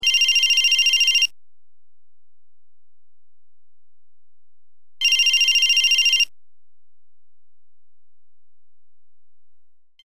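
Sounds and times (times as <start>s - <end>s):
cell phone ringing: 0.0s - 1.3s, 5.0s - 6.3s.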